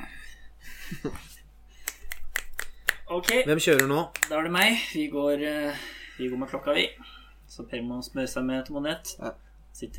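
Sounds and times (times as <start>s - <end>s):
speech: 0.9s - 1.3s, 3.1s - 9.9s
sharp uneven hand claps: 1.8s - 4.4s.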